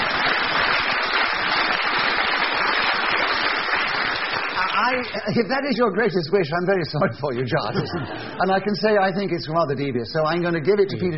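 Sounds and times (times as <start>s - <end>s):
large audience applause: 0.0s - 5.4s
speech: 4.9s - 11.1s
laughter: 7.0s - 8.8s.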